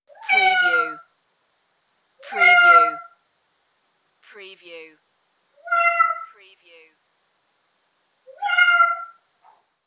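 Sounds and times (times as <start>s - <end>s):
cat meowing: 0.1s - 1.0s, 2.2s - 3.1s, 5.6s - 6.3s, 8.3s - 9.2s.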